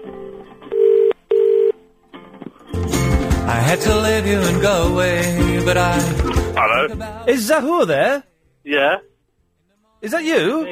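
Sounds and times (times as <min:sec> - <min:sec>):
telephone keypad tones while redialing: 0:00.7 - 0:01.7
speech: 0:03.7 - 0:09.1, 0:10.0 - 0:10.7.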